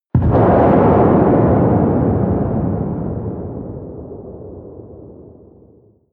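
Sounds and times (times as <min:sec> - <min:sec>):
large missile firing: 0:00.1 - 0:05.8.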